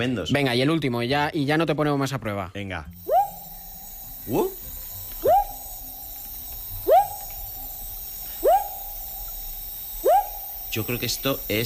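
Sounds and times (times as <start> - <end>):
speech: 0.0 - 3.1, 4.2 - 4.6, 10.8 - 11.6
frog calling with rising whooping notes: 3.0 - 11.6.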